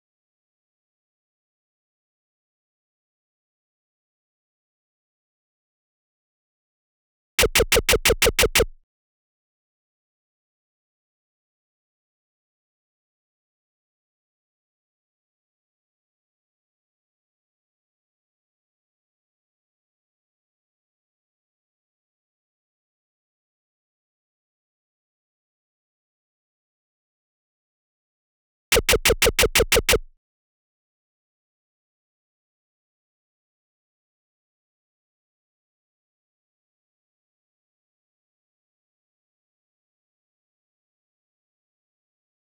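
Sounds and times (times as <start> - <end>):
harsh drums: 7.4 - 8.7, 28.8 - 30.0.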